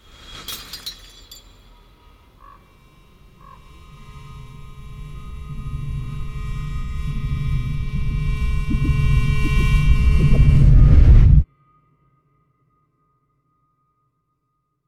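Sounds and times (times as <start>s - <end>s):
empty glass bottle thrown onto a field shattering: 0.4s - 1.7s
low rumble: 4.4s - 11.4s.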